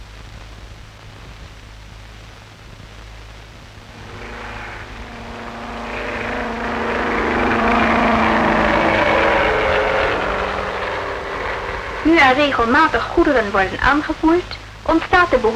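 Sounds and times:
airplane taking off after a tyre inspection: 3.7 - 15.5
speech: 12.3 - 15.5.

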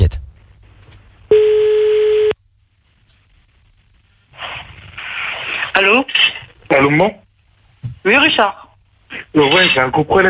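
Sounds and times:
ringback tone on an outgoing phone call: 1.3 - 2.4
burst of noise: 4.3 - 5.8
speech: 6.8 - 7.2, 8.0 - 8.6, 9.3 - 10.2.

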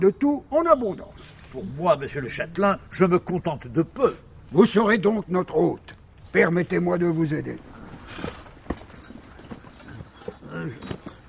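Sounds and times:
speech: 0.0 - 8.4
horse hooves clip-clopping on arrival at a castle: 7.8 - 11.2.

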